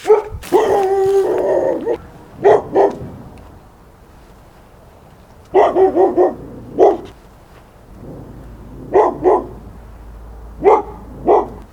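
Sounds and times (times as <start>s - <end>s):
Labrador barking in alley: 0.0s - 3.1s, 5.5s - 7.2s, 8.9s - 9.6s, 10.6s - 11.7s.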